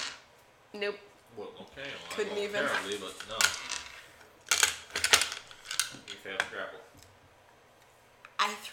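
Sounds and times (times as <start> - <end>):
dice clattering across a hard tabletop: 0.0 - 0.2, 2.7 - 6.2
speech: 0.7 - 3.8, 6.2 - 7.0, 8.4 - 8.7.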